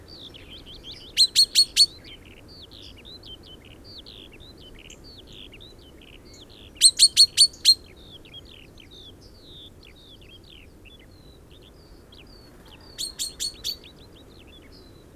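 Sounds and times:
Common chaffinch Fringilla coelebs soft twittering and whistles: 0:00.2 - 0:02.1, 0:06.8 - 0:07.9, 0:12.1 - 0:15.1.

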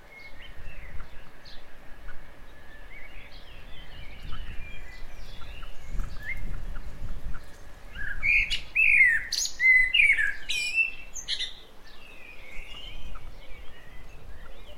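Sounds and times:
common blackbird Turdus merula singing: 0:00.0 - 0:14.7.

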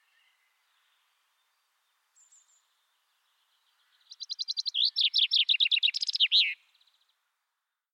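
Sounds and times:
common chaffinch Fringilla coelebs singing: 0:04.1 - 0:06.6.

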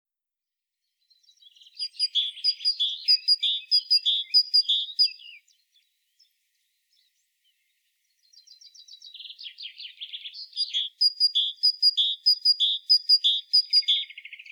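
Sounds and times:
great tit calls: 0:01.3 - 0:05.6, 0:08.3 - 0:14.5.

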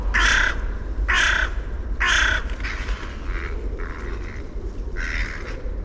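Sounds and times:
carrion crow Corvus corone cawing: 0:00.1 - 0:05.8.

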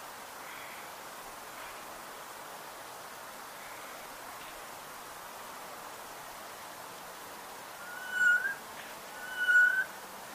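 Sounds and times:
faint steady background hiss: 0:00.0 - 0:10.3
Eurasian jay Garrulus glandarius giving drawn-out slightly rising mewing whistles: 0:07.8 - 0:08.6, 0:09.2 - 0:09.9.

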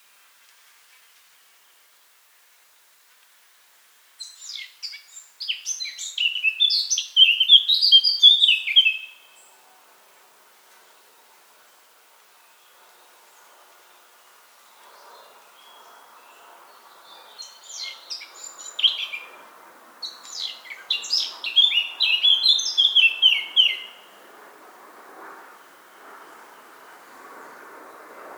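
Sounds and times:
Eurasian blackcap Sylvia atricapilla giving warbled phrases: 0:04.2 - 0:09.2, 0:20.0 - 0:24.1.

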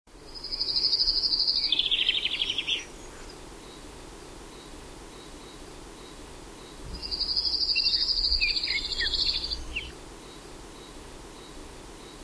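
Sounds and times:
common chaffinch Fringilla coelebs singing: 0:00.3 - 0:03.4, 0:06.9 - 0:10.4.

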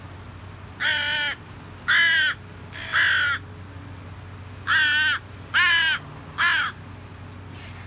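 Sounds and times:
carrion crow Corvus corone cawing: 0:00.8 - 0:03.4, 0:04.7 - 0:06.8.

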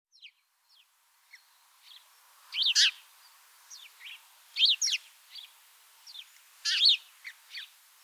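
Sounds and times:
house sparrow chirps: 0:00.2 - 0:03.0, 0:03.7 - 0:05.5, 0:06.1 - 0:07.7.

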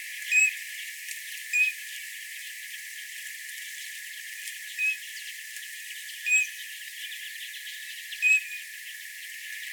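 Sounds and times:
Eurasian bullfinch Pyrrhula pyrrhula piping whistles: 0:00.3 - 0:00.5, 0:08.2 - 0:08.6.

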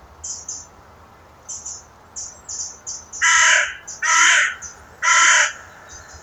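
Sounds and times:
small birds chirping: 0:00.2 - 0:00.8, 0:01.5 - 0:06.2
carrion crow Corvus corone cawing: 0:03.2 - 0:06.2.

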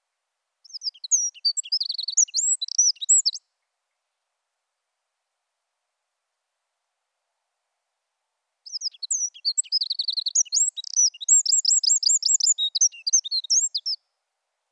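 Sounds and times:
Eurasian wren singing: 0:00.6 - 0:03.4, 0:08.7 - 0:14.0.

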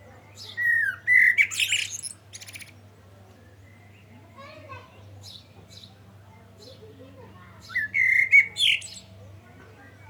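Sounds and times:
Common blackbird Turdus merula squeaky high-pitched song phrase: 0:00.3 - 0:02.9, 0:07.6 - 0:09.1
faint bird chirps: 0:00.6 - 0:02.8.

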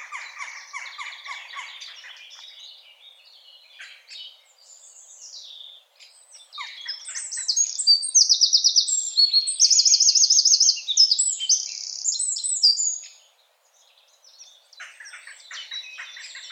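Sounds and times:
Eurasian wren (Troglodytes troglodytes) singing loud high trills: 0:00.0 - 0:16.5.

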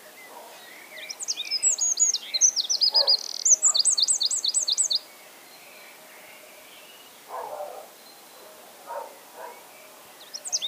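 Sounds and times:
Eurasian wren Troglodytes troglodytes singing: 0:00.0 - 0:08.4, 0:09.0 - 0:10.6.

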